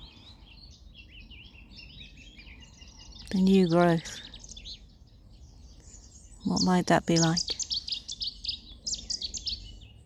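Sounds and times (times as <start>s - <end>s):
birdsong of rapid high bright chirps: 0.0s - 10.0s
speech: 3.3s - 4.2s, 6.5s - 7.5s.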